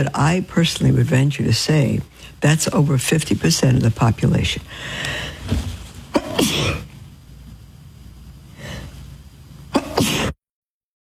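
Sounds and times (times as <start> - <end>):
speech: 0.0 - 5.7
person sneezing: 6.1 - 6.9, 9.7 - 10.4.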